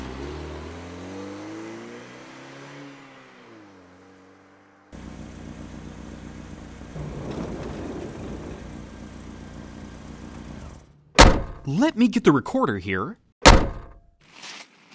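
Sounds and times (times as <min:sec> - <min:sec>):
car engine idling and revving at a drive-in concession stand: 0:00.0 - 0:11.6
speech: 0:11.7 - 0:13.2.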